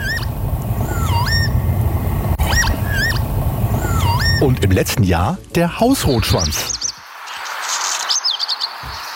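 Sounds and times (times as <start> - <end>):
northern lapwing wheezy pee-wit calls: 0.0 - 1.6, 2.4 - 4.5
steady rumble of wind in open country: 0.0 - 9.1
speech: 4.4 - 6.8.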